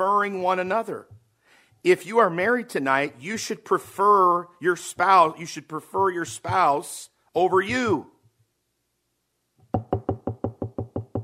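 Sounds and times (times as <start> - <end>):
speech: 0.0 - 1.2, 1.8 - 8.1
firm knocking on a door: 9.7 - 11.2.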